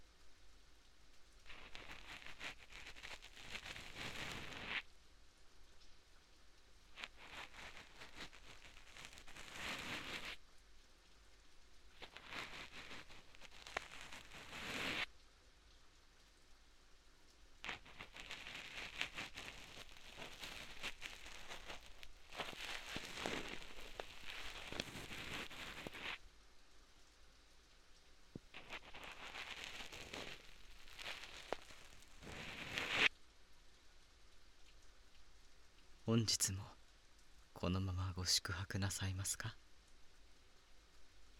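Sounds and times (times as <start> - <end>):
steady rain falling: 0.0 - 41.3
speech: 36.1 - 36.7, 37.6 - 39.6.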